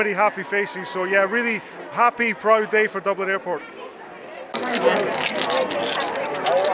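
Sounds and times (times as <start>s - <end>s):
speech: 0.0s - 3.9s, 4.5s - 6.7s
crowd chatter and murmuring voices at a homecoming: 0.0s - 6.7s
metal gold, silver and bronze medals clinking together: 4.6s - 6.7s.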